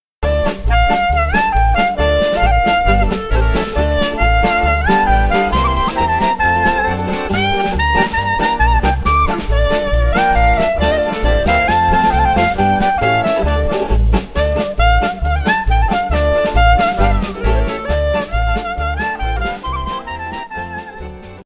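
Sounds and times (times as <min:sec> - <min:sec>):
klezmer music from Israel: 0:00.2 - 0:21.4.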